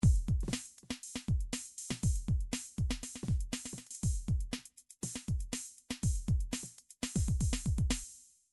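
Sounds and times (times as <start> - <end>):
MIDI drums playing triplets: 0.0 - 8.1.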